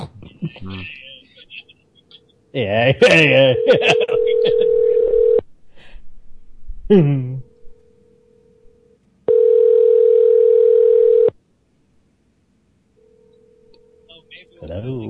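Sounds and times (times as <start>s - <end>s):
laughter: 0.0s - 5.2s
speech: 0.6s - 1.0s, 2.5s - 4.6s, 6.9s - 7.3s
telephone dial tone after other party hung up: 4.2s - 5.4s, 9.3s - 11.3s.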